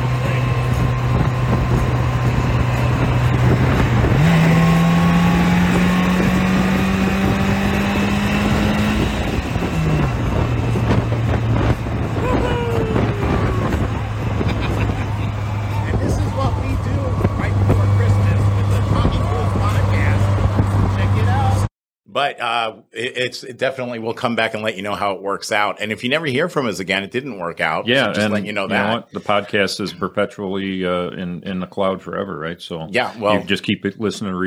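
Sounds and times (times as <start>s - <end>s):
engine of a Slingshot three-wheeled car being driven: 0.0s - 21.7s
laughter: 12.2s - 16.9s, 27.9s - 30.2s, 33.0s - 33.6s
speech: 22.3s - 34.4s.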